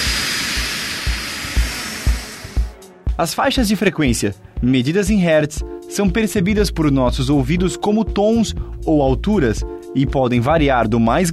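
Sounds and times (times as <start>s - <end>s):
jet airplane turbine roaring: 0.0s - 2.9s
speech: 3.2s - 11.3s.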